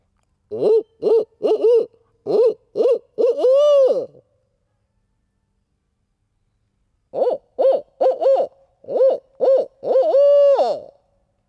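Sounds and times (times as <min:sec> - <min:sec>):
man imitating a barred owl call: 0:00.5 - 0:04.2, 0:07.2 - 0:10.9.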